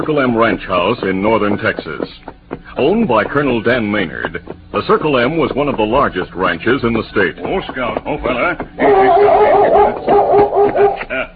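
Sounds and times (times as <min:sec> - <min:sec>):
speech: 0:00.0 - 0:11.3
laughter: 0:08.2 - 0:11.3
German shepherd dog barking excitedly: 0:08.8 - 0:11.1.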